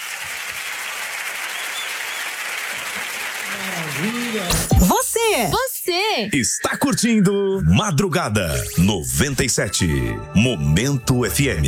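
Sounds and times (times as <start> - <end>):
audience applause at the end of a show: 0.0 - 4.9
speech: 3.5 - 11.6.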